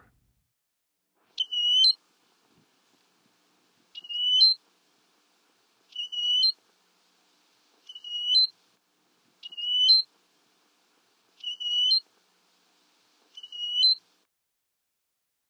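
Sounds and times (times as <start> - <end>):
American golden-plover calling in the Western USA: 1.4 - 2.0, 3.9 - 4.6, 5.9 - 6.6, 7.9 - 8.5, 9.4 - 10.1, 11.4 - 12.0, 13.3 - 14.0.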